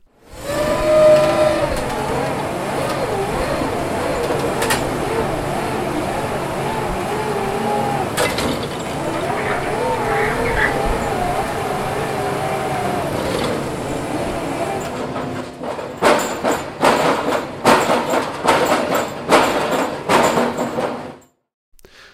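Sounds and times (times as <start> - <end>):
large rotary drilling rig boring into ground with droning engine rumble: 0.3 - 16.8
rhythmic clanking bursts of rotary drilling rig: 0.4 - 20.9.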